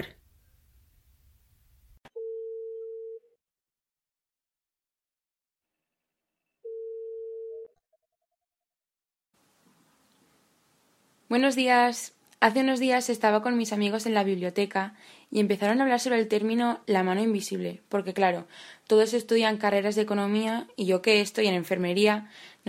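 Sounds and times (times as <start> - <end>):
telephone line tones as a call is put through: 2.1 - 3.4, 6.6 - 7.8
speech: 11.3 - 22.6.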